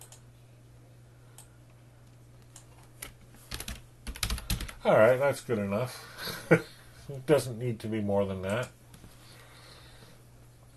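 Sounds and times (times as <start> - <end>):
fingers typing on a computer keyboard: 2.5 - 4.8
speech: 4.8 - 8.8.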